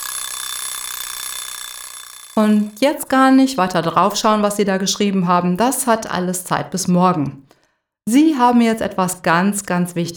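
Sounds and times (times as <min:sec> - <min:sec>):
electronic alarm clock ringing: 0:00.0 - 0:03.8
speech: 0:02.4 - 0:10.1.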